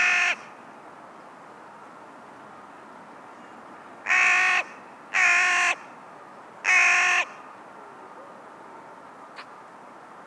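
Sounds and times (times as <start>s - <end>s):
carrion crow, Corvus corone, giving rasping caws: 4.1s - 5.8s, 6.7s - 7.3s.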